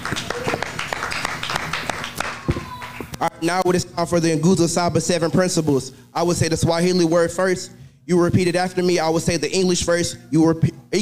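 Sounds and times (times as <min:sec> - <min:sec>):
church congregation hands clapping in praise: 0:00.0 - 0:03.3
speech: 0:03.3 - 0:11.0.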